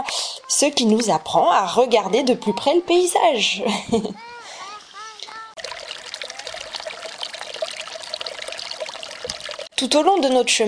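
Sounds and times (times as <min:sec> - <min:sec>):
speech: 0:00.0 - 0:04.3, 0:09.8 - 0:10.6
water gurgling through a small mountainside irrigation channel by the Tarn river: 0:05.2 - 0:10.6.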